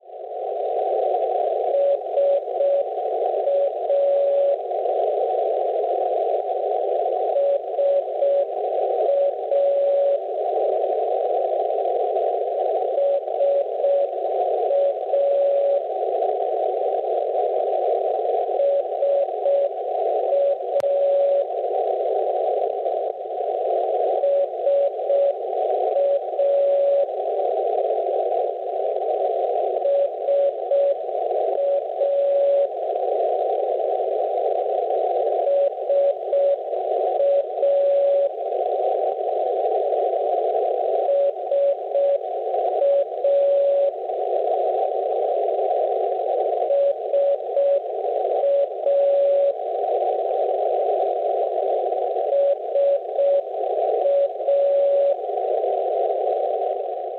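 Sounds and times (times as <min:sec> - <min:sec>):
NDB radio beacon signal on 474.5 kHz: 0:00.2 - 0:57.1.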